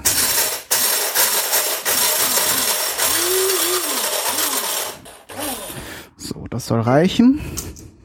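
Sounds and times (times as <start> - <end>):
electric grinder crushing pepper and dry spices: 0.8 - 5.9
speech: 6.5 - 7.6.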